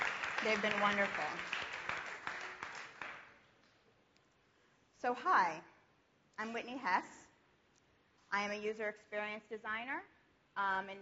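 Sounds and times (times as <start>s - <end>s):
conference audience applauding: 0.0s - 3.4s
speech: 0.4s - 1.6s, 5.0s - 5.7s, 6.4s - 7.2s, 8.3s - 10.9s.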